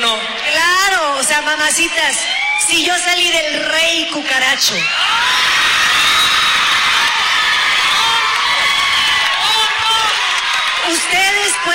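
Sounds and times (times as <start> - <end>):
large crowd shouting and cheering: 0.0 - 11.7
speech: 1.4 - 5.5, 10.9 - 11.7
high whoops and screams: 2.1 - 3.0, 4.6 - 11.7.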